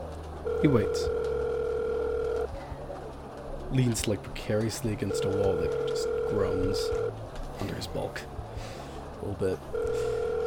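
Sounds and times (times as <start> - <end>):
speech: 0.4 - 1.3, 3.7 - 10.1
steady electronic telephone tone: 0.4 - 2.5, 5.1 - 7.1, 9.7 - 10.4.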